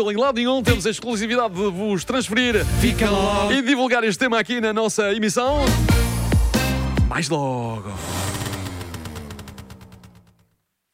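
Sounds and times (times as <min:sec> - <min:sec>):
speech: 0:00.0 - 0:06.2, 0:07.1 - 0:08.3
motor scooter driving away: 0:08.0 - 0:10.5.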